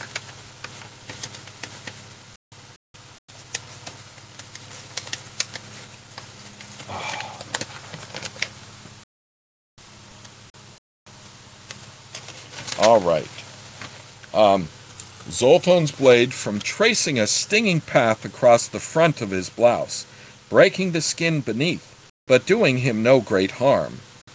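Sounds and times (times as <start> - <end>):
stuck-together paper book pages peeled apart and turned with crinkling: 0.0 - 2.0, 3.4 - 8.5, 11.7 - 14.0
speech: 12.9 - 13.4, 14.4 - 24.1.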